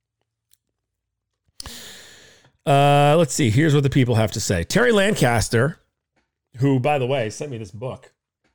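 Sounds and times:
soft clicks and mouth sounds: 1.6s - 1.9s
speech: 2.6s - 5.8s, 6.6s - 8.2s.

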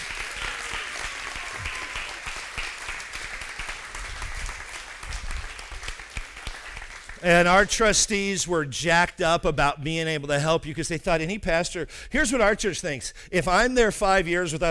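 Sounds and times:
applause from a large crowd: 0.0s - 7.7s
speech: 7.2s - 14.7s.

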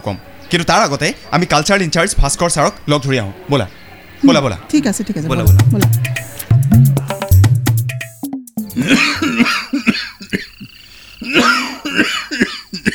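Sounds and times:
speech: 0.0s - 7.0s
elderly man coughing: 8.7s - 10.5s, 11.2s - 12.9s.

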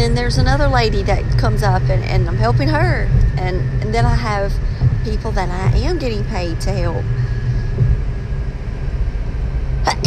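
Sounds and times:
low rumbling background: 0.0s - 10.0s
speech: 0.1s - 7.3s, 9.8s - 10.0s
person sneezing: 9.9s - 10.0s.

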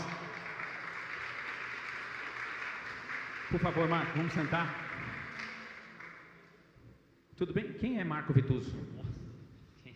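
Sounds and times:
audience applause welcoming a guest to an interview: 0.0s - 6.4s
speech: 3.5s - 4.8s, 7.4s - 9.0s.

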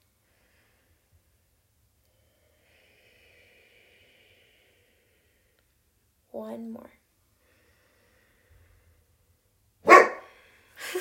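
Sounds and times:
speech: 6.4s - 7.0s
dog barking during a yoga class: 9.8s - 10.3s.

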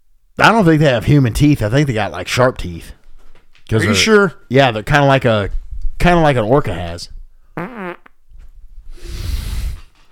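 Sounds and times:
speech: 0.4s - 3.0s, 3.7s - 7.2s
fart: 7.6s - 8.2s.

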